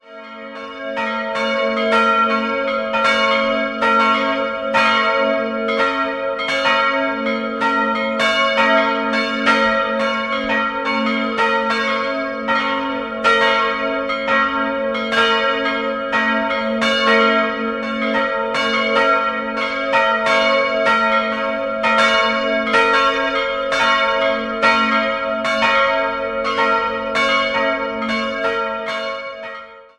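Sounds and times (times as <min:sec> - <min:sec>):
parish church bells in Ainau: 0:00.0 - 0:29.9.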